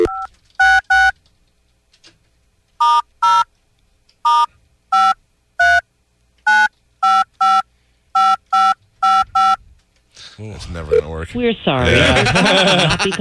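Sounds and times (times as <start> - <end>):
telephone keypad tones from dialing an international number on a hotel phone: 0.0 - 1.2, 2.8 - 3.5, 4.3 - 5.8, 6.5 - 9.6
speech: 11.3 - 13.1
laughter: 11.8 - 13.1.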